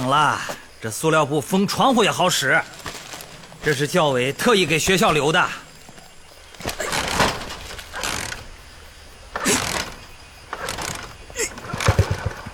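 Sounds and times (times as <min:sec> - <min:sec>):
speech: 0:00.1 - 0:02.8, 0:03.6 - 0:05.6
old worn-out car engine cranking and failing to start: 0:06.7 - 0:12.5.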